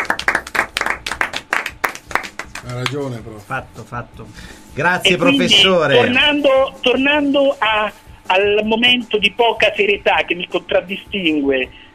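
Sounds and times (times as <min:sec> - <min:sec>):
class applauding: 0:00.0 - 0:03.0
speech: 0:02.6 - 0:11.8.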